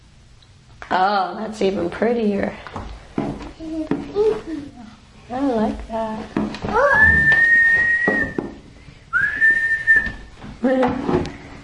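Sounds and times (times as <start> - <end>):
speech: 0.9 - 3.0, 5.3 - 7.4, 10.6 - 11.3
person whistling: 6.8 - 8.4, 9.1 - 10.3.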